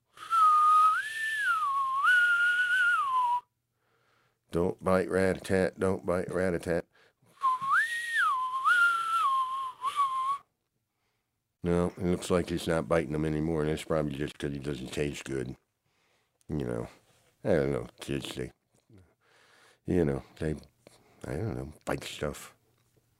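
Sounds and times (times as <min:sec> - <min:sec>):
whistle blowing: 0:00.2 - 0:03.5, 0:07.4 - 0:10.4
speech: 0:04.5 - 0:06.9, 0:11.6 - 0:15.6, 0:16.5 - 0:19.1, 0:19.9 - 0:22.6.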